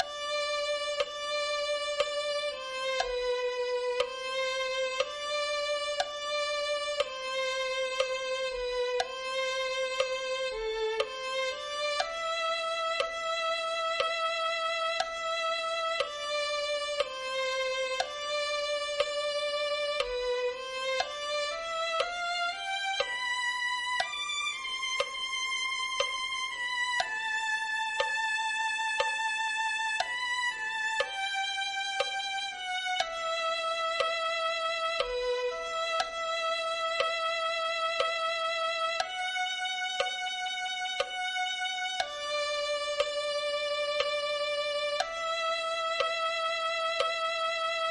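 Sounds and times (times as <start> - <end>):
violin melody: 0.0 - 47.8.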